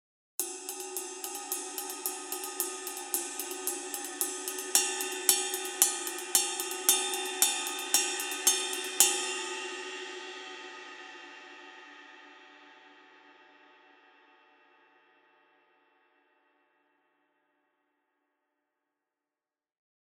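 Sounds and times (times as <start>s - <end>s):
custom 22 ride cymbal playing rock: 0.4s - 11.4s.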